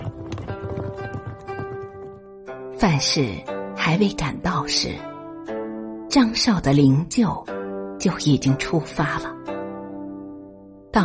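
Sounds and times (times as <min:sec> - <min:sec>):
hooves of a fast horse galloping with a rider: 0:00.0 - 0:02.5
speech: 0:02.8 - 0:05.1, 0:06.1 - 0:09.4.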